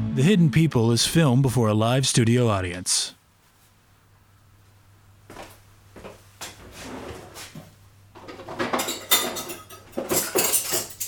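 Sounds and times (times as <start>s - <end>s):
speech: 0.2s - 3.2s
forks, spoons, knives and plates clattering on a table: 8.2s - 11.0s.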